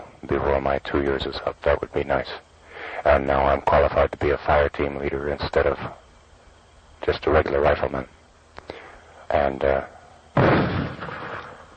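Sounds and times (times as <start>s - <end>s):
speech: 0.3s - 6.0s, 7.0s - 8.2s, 9.3s - 10.5s
mortars firing at night: 10.4s - 11.6s.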